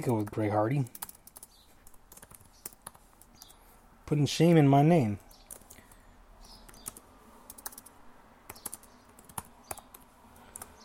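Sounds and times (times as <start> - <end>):
speech: 0.0 - 1.0, 4.1 - 5.2
typing on a computer keyboard: 0.0 - 3.6, 5.2 - 6.0, 6.7 - 10.8.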